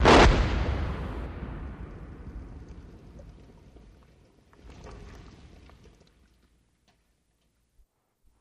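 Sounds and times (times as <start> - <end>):
cannon mortar shot: 0.0 - 3.2.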